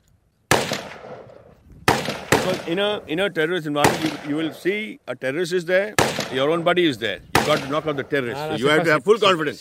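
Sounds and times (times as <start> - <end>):
gunshot fired at a pinpoint headshot target during shooting training: 0.5 - 2.8, 3.8 - 4.6, 6.0 - 6.6, 7.3 - 8.0
speech: 2.4 - 9.5.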